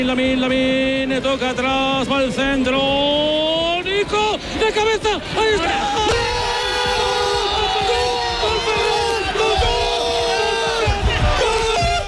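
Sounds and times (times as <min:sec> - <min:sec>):
speech: 0:00.0 - 0:06.4
massive stadium crowd roaring and cheering a goal: 0:00.0 - 0:12.0.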